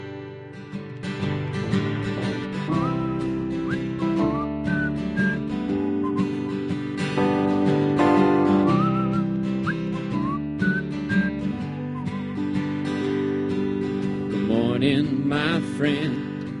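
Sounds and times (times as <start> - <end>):
instrumental music: 0.9 - 16.5
person whistling imitation of white-crowned sparrow song: 2.7 - 6.7, 8.7 - 12.5.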